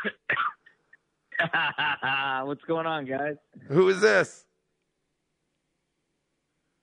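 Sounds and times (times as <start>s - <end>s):
phone caller coughing over the line: 0.0s - 0.8s
speech: 1.5s - 4.5s.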